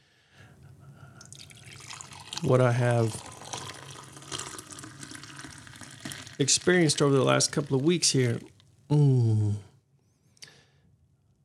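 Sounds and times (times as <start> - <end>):
decaffeinated coffee pouring into a cup: 1.2 - 8.6
speech: 2.4 - 3.3, 6.4 - 9.7.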